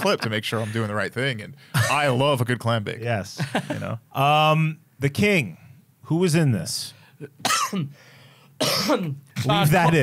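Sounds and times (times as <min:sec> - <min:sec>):
speech: 0:00.0 - 0:10.0
raspy coughs: 0:07.4 - 0:08.0, 0:08.6 - 0:09.2.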